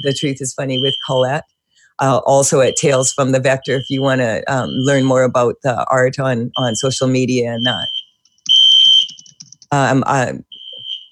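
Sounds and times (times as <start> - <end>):
shrill high-pitched building fire alarm blaring: 0.0 - 1.5, 2.3 - 5.4, 6.4 - 9.5, 10.5 - 11.1
speech: 0.0 - 8.0, 9.7 - 10.5.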